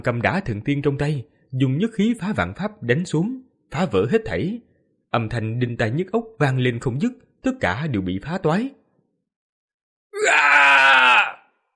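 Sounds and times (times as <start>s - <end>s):
speech: 0.0s - 8.8s
man screaming loudly in a frenzy: 10.2s - 11.5s.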